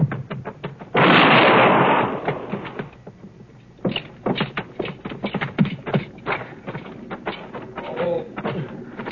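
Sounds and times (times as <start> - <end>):
scuffling and clattering knocks and movement sounds: 0.0 - 1.2, 2.1 - 9.0
gunshot in a western radio drama about an arrest: 1.0 - 2.9.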